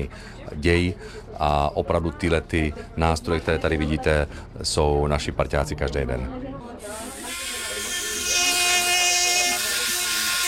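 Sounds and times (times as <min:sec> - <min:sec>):
speech: 0:00.0 - 0:07.0
handheld orthopedic surgical bone saw whirring: 0:06.9 - 0:10.4.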